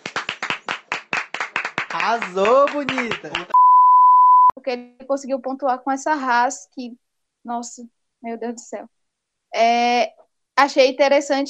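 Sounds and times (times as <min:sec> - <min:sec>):
brisk steady hand clapping: 0:00.0 - 0:03.6
speech: 0:02.0 - 0:03.6, 0:04.7 - 0:09.0, 0:09.6 - 0:11.4.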